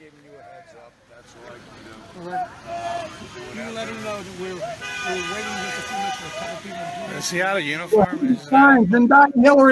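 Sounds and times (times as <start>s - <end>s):
busy crowd murmur: 0.0s - 9.6s
speech: 0.7s - 9.6s
car horns honking: 2.6s - 8.7s.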